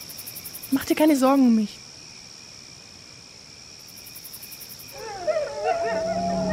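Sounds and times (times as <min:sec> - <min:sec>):
speech: 0:00.7 - 0:01.8
wolves howling: 0:04.9 - 0:06.5.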